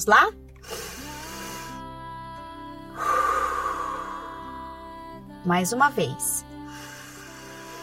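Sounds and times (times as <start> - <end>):
speech: 0.0 - 0.8, 5.4 - 6.5
slow breathing during a paced breathing exercise: 0.6 - 2.0, 2.9 - 4.7, 6.6 - 7.8.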